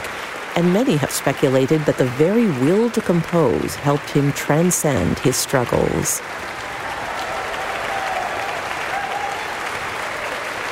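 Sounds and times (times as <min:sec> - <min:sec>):
concert audience applause: 0:00.0 - 0:10.7
speech: 0:00.6 - 0:06.5
concert audience whistles and cheers: 0:06.6 - 0:10.7.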